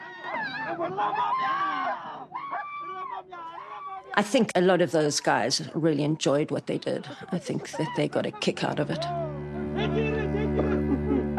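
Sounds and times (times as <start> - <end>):
laughter: 0.0 - 11.3
speech: 0.7 - 9.2, 9.8 - 10.7
man screaming while mauled by Alsatian dog: 1.0 - 4.2.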